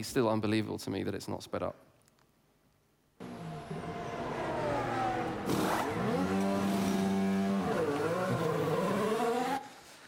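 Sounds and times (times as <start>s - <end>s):
speech: 0.0s - 1.9s
race car engine during a pit stop tire change: 3.2s - 9.8s.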